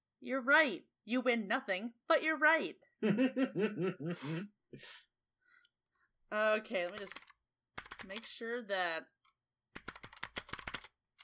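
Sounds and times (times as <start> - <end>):
speech: 0.2 - 5.1, 6.3 - 7.3, 8.0 - 9.1
laughter: 3.0 - 4.4
loud computer keyboard typing: 6.7 - 8.4, 9.8 - 11.2.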